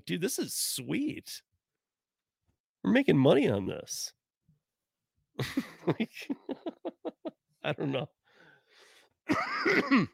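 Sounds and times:
speech: 0.0 - 1.5, 2.8 - 4.2, 5.4 - 7.0, 7.6 - 8.2, 9.3 - 10.1
laughter: 5.4 - 7.4
soft breathy noise: 8.2 - 9.2
gravelly throat clearing: 9.7 - 10.1.

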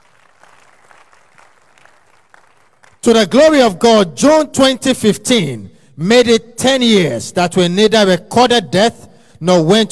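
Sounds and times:
audience applauding during a religious testimony: 0.0 - 3.0
speech: 3.0 - 9.9.

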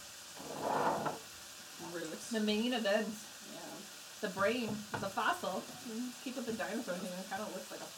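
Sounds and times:
chicken browning and sizzling in a hot pan: 0.0 - 7.9
speech: 2.3 - 3.3, 4.2 - 7.9.

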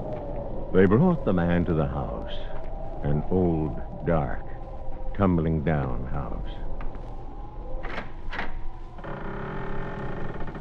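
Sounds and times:
speech: 0.7 - 4.5, 5.2 - 6.7
front door creaking open with a groaning squeak: 7.8 - 10.5.

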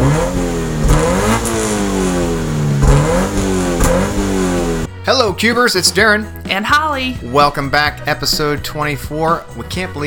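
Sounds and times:
car engine revving: 0.0 - 5.0
speech: 5.1 - 10.0.

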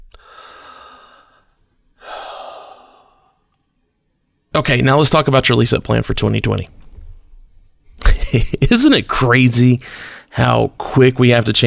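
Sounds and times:
deep breath: 0.0 - 3.5, 9.8 - 10.3
speech: 4.6 - 6.8, 8.4 - 11.6.

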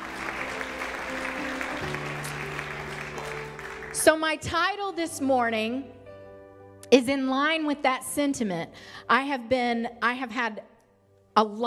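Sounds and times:
sustained organ-like chords: 0.0 - 4.1
crowd clapping in praise: 0.0 - 4.2
speech: 4.0 - 6.0, 6.9 - 10.7, 11.4 - 11.6.

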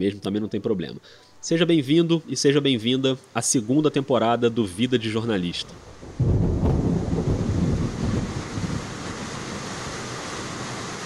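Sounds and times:
speech: 0.0 - 6.5
loud rainstorm with steady broadband rain hiss: 0.9 - 11.0
deep rumble of thunder: 5.8 - 10.5.

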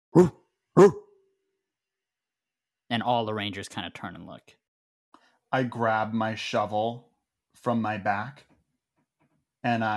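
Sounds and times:
speech: 0.1 - 1.0, 2.9 - 4.6, 5.5 - 8.5, 9.6 - 9.9
dog barking in the woods: 0.2 - 1.1.

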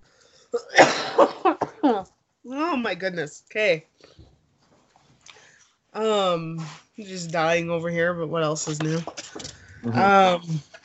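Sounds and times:
person coughing harshly: 0.6 - 2.0
speech: 2.8 - 4.2, 6.0 - 10.8.

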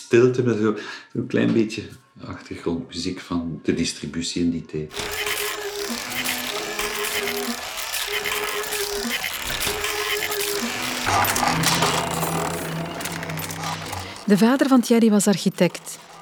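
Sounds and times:
speech: 0.1 - 6.3, 14.3 - 16.1
Olivetti mechanical calculator clattering during arithmetic operations: 4.9 - 16.2
mechanical calculator motor whirring in rising and falling tones: 4.9 - 16.2.

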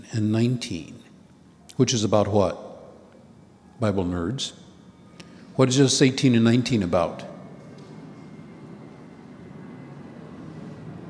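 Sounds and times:
speech: 0.2 - 1.0, 1.8 - 2.6, 3.8 - 4.6, 5.6 - 7.3
airplane passing overhead: 2.5 - 11.0.

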